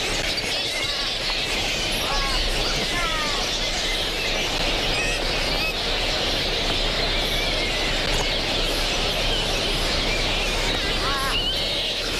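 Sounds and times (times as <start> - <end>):
large flying fox colony squeaking and chattering: 0.0 - 12.1.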